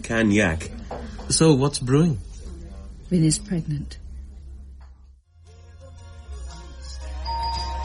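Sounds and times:
speech: 0.1s - 0.7s, 1.3s - 2.3s, 3.1s - 4.0s
doorbell chiming: 7.0s - 7.8s.

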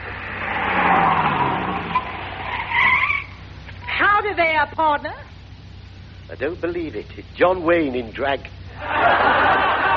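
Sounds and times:
heavy tandem bicycle tires skidding and squealing to a stop: 0.0s - 3.4s
speech: 4.4s - 5.3s, 6.3s - 9.2s
laughter: 8.7s - 9.9s.

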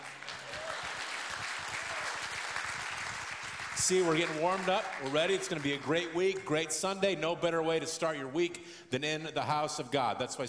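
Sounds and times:
large audience clapping: 0.0s - 7.0s
speech: 3.8s - 10.4s.

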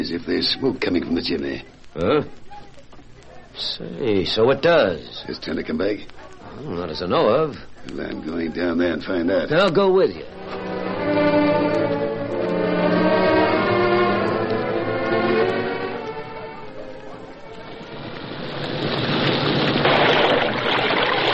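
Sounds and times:
speech: 0.0s - 2.5s, 3.6s - 10.6s
steady tonal backdrop: 10.2s - 19.7s
logs splashing into a creek: 18.4s - 21.3s.

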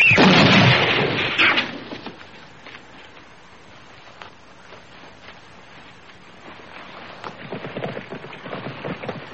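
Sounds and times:
gunshots booming and echoing: 0.1s - 1.7s.

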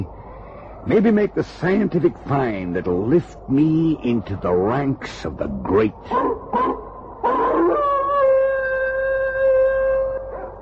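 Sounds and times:
speech: 0.8s - 6.8s
sled dog yelping and howling: 6.1s - 10.6s.

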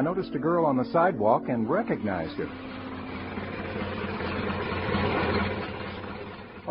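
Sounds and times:
speech: 0.0s - 2.8s
Model A coupe engine idling: 1.8s - 6.6s.

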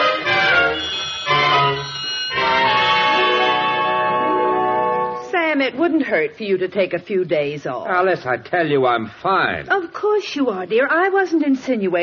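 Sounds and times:
several bells ringing together: 0.2s - 5.3s
speech: 5.8s - 12.0s.

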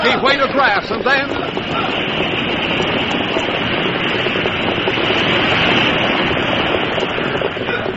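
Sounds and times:
floodwater rushing past in a loud roar: 0.0s - 7.9s
speech: 0.1s - 2.8s.

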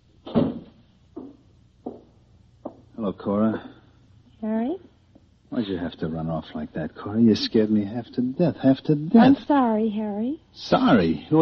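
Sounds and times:
door being closed with soft knocks and thuds: 0.2s - 2.1s
speech: 3.0s - 3.8s, 5.6s - 11.4s.

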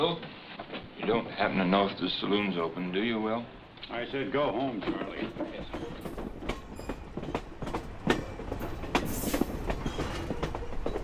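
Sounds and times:
speech: 0.0s - 0.3s, 1.0s - 6.3s
steam train wheels clickety-clack knocks: 0.0s - 1.7s, 4.6s - 11.0s
slow steam train rolling on rails: 0.0s - 11.0s.

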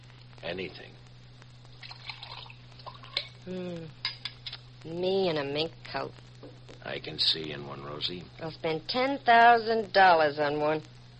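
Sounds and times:
steady low hum: 0.0s - 11.1s
speech: 0.4s - 1.0s, 3.4s - 4.0s, 4.8s - 10.9s
coffee being poured into a cup: 1.8s - 3.3s.

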